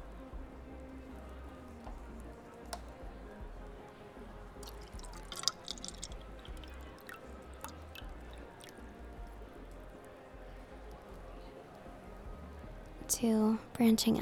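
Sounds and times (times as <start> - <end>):
drink pouring into a glass: 4.5 - 9.1
sharp drips and glass clinks: 4.6 - 9.0
speech: 13.1 - 14.2.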